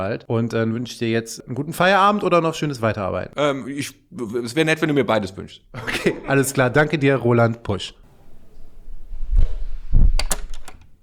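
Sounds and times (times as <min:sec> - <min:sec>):
speech: 0:00.0 - 0:08.0
laughter: 0:05.8 - 0:07.0
office door thuds: 0:09.9 - 0:11.0.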